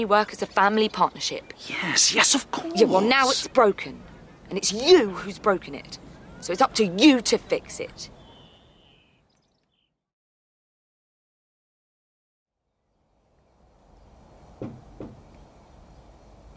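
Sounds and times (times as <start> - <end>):
speech: 0.0 - 8.2
knocking on a door: 14.6 - 15.3.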